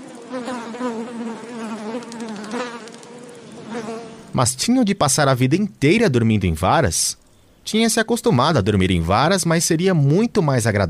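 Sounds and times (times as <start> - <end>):
flies buzzing: 0.0 - 4.4
speech: 0.3 - 2.4, 4.4 - 10.8.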